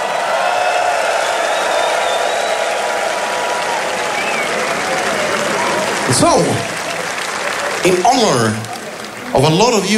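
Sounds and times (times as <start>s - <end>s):
large concert crowd clapping at a festival in Belgium: 0.0s - 9.9s
concert crowd whistles: 0.6s - 2.9s, 4.0s - 4.8s
speech: 6.1s - 6.8s, 7.8s - 8.7s, 9.3s - 9.9s.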